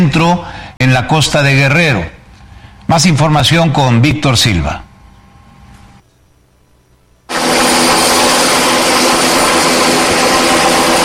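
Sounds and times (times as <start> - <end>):
speech: 0.0 - 2.2, 2.9 - 4.9
helicopter rotor blades roaring: 7.3 - 11.0.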